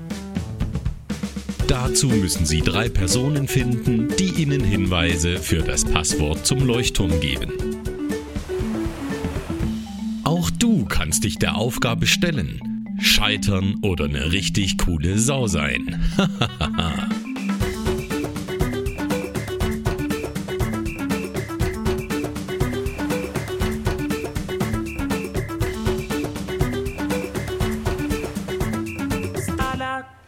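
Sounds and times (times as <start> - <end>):
podcast musical jingle with driving beat and layered instruments: 0.0 - 29.8
speech: 1.7 - 7.7, 10.4 - 17.2
laughter: 15.9 - 17.2.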